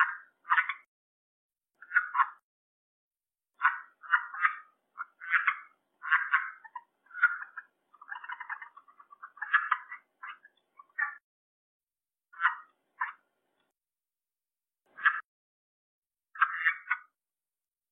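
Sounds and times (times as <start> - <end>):
red-eyed tree frog chuckling in short clucks and rattles: 0.0 - 0.9, 1.8 - 2.4, 3.6 - 11.2, 12.3 - 13.3, 14.9 - 15.3, 16.4 - 17.2.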